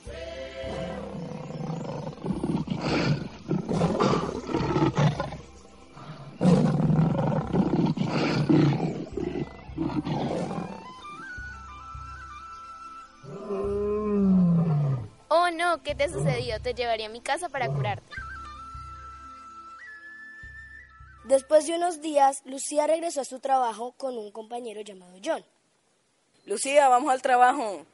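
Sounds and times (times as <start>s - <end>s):
two lions roaring and snarling in a fight over leadership of the pride: 0.7s - 11.2s, 13.2s - 15.1s, 17.6s - 18.0s
speech: 15.9s - 18.3s, 21.3s - 25.6s, 26.5s - 27.9s.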